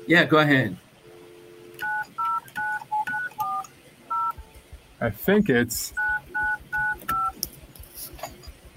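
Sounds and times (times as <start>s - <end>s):
speech: 0.1s - 0.8s, 5.0s - 6.0s
telephone dial tone: 1.5s - 4.4s, 6.0s - 7.3s.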